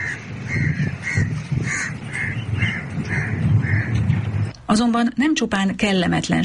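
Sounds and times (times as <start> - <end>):
crows cawing: 0.0 - 4.1
speech: 4.7 - 6.4.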